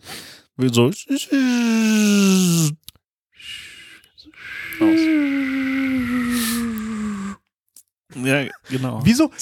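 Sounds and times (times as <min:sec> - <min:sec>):
speech: 0:00.6 - 0:02.4, 0:08.7 - 0:09.4
voice imitating the hum of an electric car: 0:04.7 - 0:07.4.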